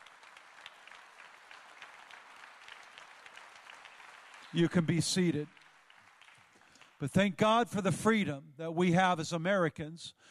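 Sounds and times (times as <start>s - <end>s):
large gathering applauding veterans: 0.0s - 7.4s
speech: 4.5s - 5.6s, 7.0s - 10.2s.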